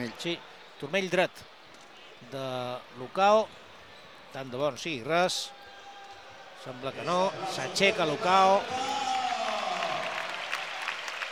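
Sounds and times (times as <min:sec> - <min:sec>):
speech: 0:00.0 - 0:01.5, 0:02.2 - 0:03.6, 0:04.3 - 0:05.6, 0:06.6 - 0:09.0
spectators clapping at a football match: 0:07.7 - 0:11.3.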